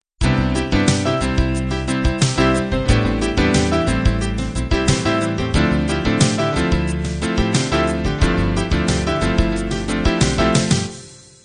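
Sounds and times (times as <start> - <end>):
jazz-pop piano intro: 0.2 - 11.3.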